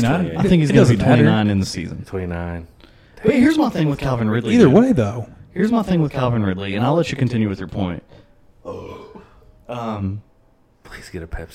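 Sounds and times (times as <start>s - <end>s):
speech: 0.0s - 9.0s, 9.7s - 11.5s
person burping: 8.6s - 9.8s.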